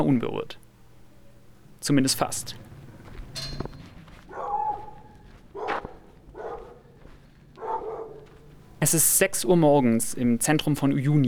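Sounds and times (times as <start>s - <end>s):
speech: 0.0s - 0.6s, 1.8s - 2.7s, 8.8s - 11.2s
faint hum: 0.0s - 11.2s
dogs barking in the street at dawn: 4.1s - 8.7s.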